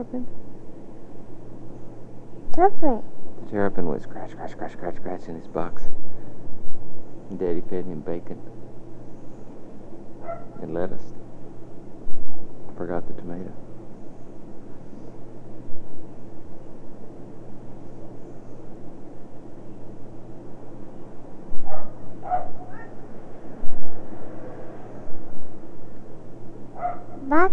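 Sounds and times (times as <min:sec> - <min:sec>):
speech: 0:00.0 - 0:00.5, 0:02.6 - 0:06.1, 0:07.3 - 0:08.5, 0:10.6 - 0:11.2, 0:12.8 - 0:13.6
steady hum: 0:00.0 - 0:27.5
dogs barking faintly: 0:10.2 - 0:11.0, 0:21.6 - 0:23.0, 0:26.8 - 0:27.3.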